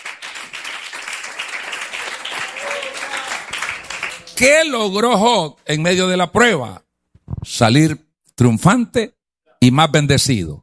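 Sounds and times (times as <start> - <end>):
audience applauding loudly: 0.0 - 4.5
speech: 4.4 - 6.8, 7.4 - 10.6.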